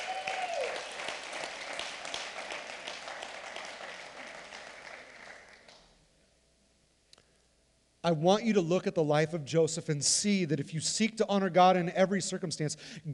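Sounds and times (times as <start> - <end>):
audience clapping: 0.0 - 6.0
speech: 8.0 - 13.1.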